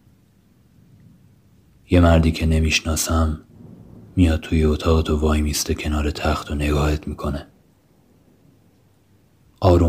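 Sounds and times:
speech: 1.9s - 3.5s, 4.2s - 7.5s, 9.6s - 9.8s
low rumbling undertone: 3.2s - 8.7s
heavy rain falling on the roof of a garden house: 3.4s - 6.5s.

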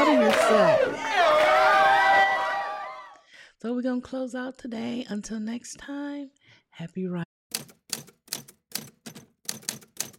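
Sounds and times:
crowd cheering and whooping: 0.0s - 3.2s
speech: 3.6s - 7.2s.

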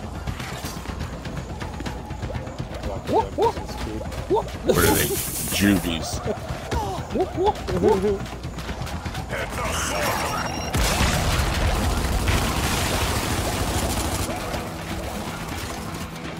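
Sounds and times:
video game sounds: 0.0s - 16.3s
speech: 3.1s - 8.4s, 9.3s - 10.3s
video game explosion: 10.6s - 13.7s.

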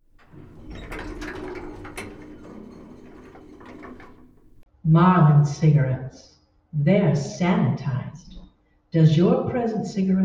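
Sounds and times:
elevator running, radio drama sound effect: 0.0s - 4.6s
speech: 4.8s - 8.3s, 8.9s - 10.2s.

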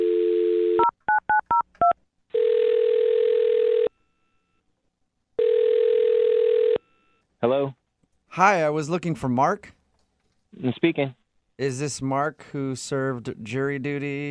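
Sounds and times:
telephone dial tone: 0.0s - 0.9s, 2.4s - 4.6s, 5.4s - 7.2s
speech: 7.4s - 9.8s, 10.6s - 14.3s.

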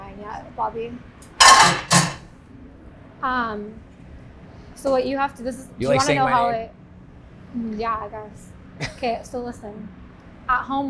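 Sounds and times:
speech: 0.4s - 2.1s, 3.2s - 3.9s, 4.8s - 6.8s, 7.5s - 10.8s
hot metal pan set down on a stainless steel kitchen counter: 1.4s - 2.2s.

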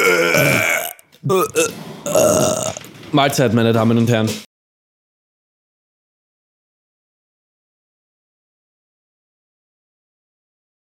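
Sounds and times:
several people belching loudly together: 0.0s - 2.9s
speech: 1.2s - 4.4s.

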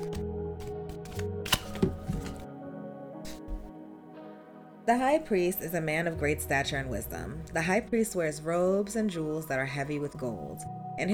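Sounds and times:
tarot cards being shuffled: 0.0s - 2.5s, 3.3s - 3.7s
speech: 4.9s - 11.1s.

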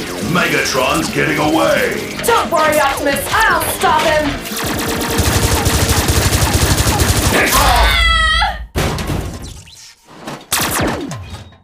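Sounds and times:
cartoon machine gun burst: 0.0s - 8.1s, 10.5s - 11.3s
speech: 0.3s - 5.1s.

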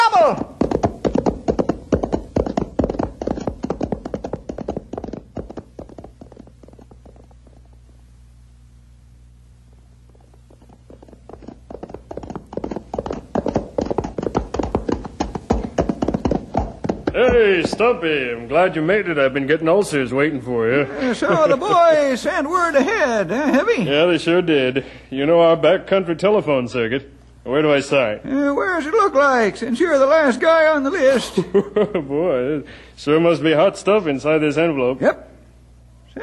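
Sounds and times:
horse hooves clip-clopping in a trotting rhythm: 0.2s - 8.0s, 9.7s - 18.4s
speech: 17.6s - 35.3s
laughter: 20.6s - 23.9s, 31.0s - 32.3s.

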